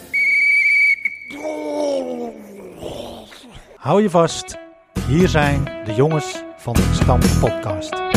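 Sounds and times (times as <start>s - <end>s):
loud steady referee's whistle blast: 0.0s - 1.4s
speech: 3.8s - 8.0s.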